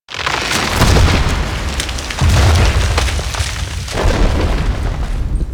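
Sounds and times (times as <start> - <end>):
mini avalanche at a mountain pass: 0.1 - 5.4.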